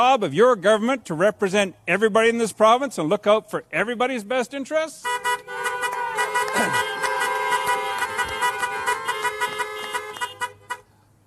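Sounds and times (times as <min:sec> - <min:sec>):
speech: 0:00.0 - 0:05.6
truck and car horns honking at a rally: 0:05.0 - 0:10.9.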